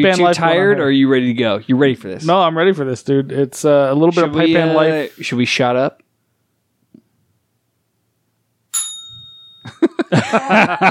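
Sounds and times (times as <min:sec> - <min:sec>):
speech: 0:00.0 - 0:06.0, 0:10.1 - 0:10.8
bell strike ringing: 0:08.8 - 0:09.9
people chuckling: 0:09.7 - 0:10.8.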